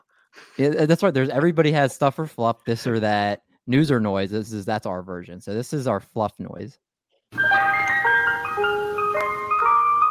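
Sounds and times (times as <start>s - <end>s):
speech: 0.6s - 7.5s
ice cream truck electronic bell-like jingle: 7.4s - 10.0s.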